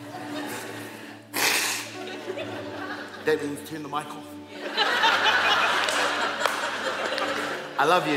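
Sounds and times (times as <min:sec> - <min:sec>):
laughter: 0:00.0 - 0:01.2, 0:01.8 - 0:03.7, 0:04.5 - 0:08.1
speaker blowing nose during a sermon: 0:00.4 - 0:02.1
speech: 0:03.2 - 0:05.0, 0:07.8 - 0:08.1.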